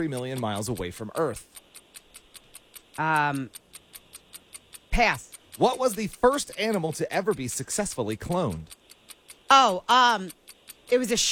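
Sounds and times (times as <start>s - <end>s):
speech: 0.0s - 1.7s, 3.0s - 3.6s, 5.0s - 8.8s, 9.5s - 11.3s
quiz timer clock ticking: 0.0s - 11.3s.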